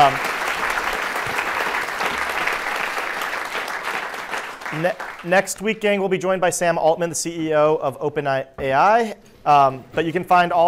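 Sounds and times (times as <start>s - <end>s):
speech: 0.0s - 0.3s, 4.7s - 10.6s
audience applause: 0.0s - 5.4s.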